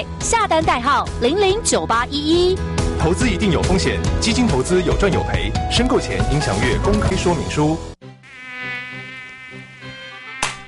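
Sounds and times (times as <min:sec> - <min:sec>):
speech: 0:00.0 - 0:08.0
high-pitched mosquito whine: 0:08.1 - 0:10.6
sharp slap-like burst: 0:10.4 - 0:10.6.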